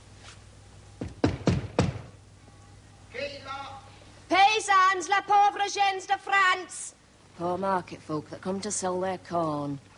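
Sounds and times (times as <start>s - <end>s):
heavy knocks on a large wooden city gate: 1.0s - 2.2s
speech: 4.9s - 9.9s.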